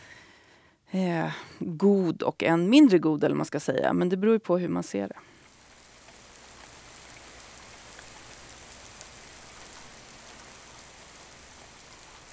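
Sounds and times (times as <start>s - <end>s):
speech: 0.9s - 5.3s
raindrop taps: 5.4s - 10.5s
heavy rain pouring: 5.4s - 12.3s.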